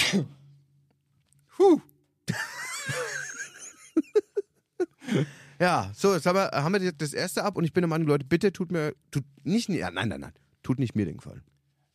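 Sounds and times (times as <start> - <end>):
person sneezing: 0.0 - 0.4
speech: 0.1 - 0.4, 1.6 - 3.0, 5.1 - 11.5
person chuckling with short quick breaths: 2.3 - 5.3.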